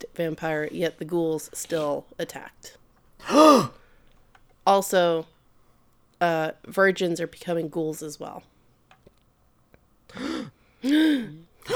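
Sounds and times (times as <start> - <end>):
speech: 0.2 - 3.8, 4.7 - 5.3, 6.2 - 8.5, 10.8 - 11.7
person gasping with a breathy intake: 3.2 - 3.9, 10.1 - 11.7.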